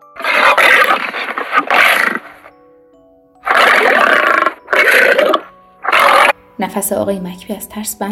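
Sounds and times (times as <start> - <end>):
lion roaring: 0.2 - 2.5, 3.4 - 6.4
speech: 6.6 - 8.1.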